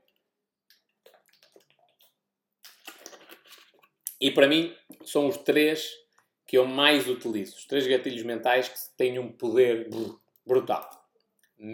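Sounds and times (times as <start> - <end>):
person drinking water: 0.6 - 4.0
soft wet sips and swallows of water: 0.7 - 4.0
gulping or splashing of water: 0.8 - 3.9
speech: 4.2 - 11.0.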